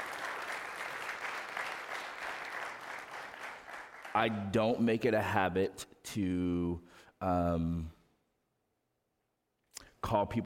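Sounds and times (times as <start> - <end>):
audience applauding: 0.0 - 4.4
speech: 4.2 - 8.0, 10.1 - 10.4.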